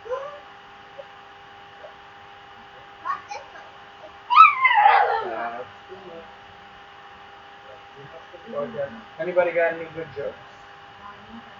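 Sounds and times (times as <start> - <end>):
dog whining: 0.0 - 1.2, 1.8 - 2.0, 2.7 - 5.6
faint dog whimpers: 0.0 - 6.3
low steady hum: 0.0 - 11.5
speech: 8.7 - 10.5.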